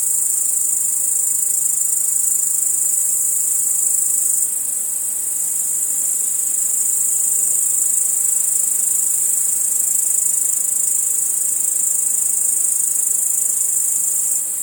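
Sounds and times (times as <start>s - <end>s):
crickets chirring: 0.0s - 14.6s.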